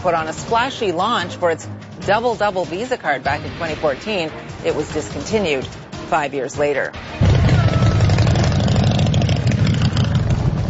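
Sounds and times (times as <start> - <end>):
speech: 0.0 - 7.2
many motorcycle engines idling at a bike night street event: 7.6 - 10.6.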